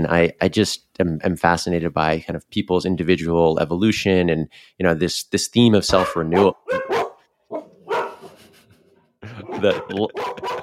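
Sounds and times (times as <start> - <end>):
speech: 0.0 - 7.0, 9.6 - 10.5
dog barking: 5.9 - 8.4, 9.4 - 10.6
laughter: 8.2 - 10.6.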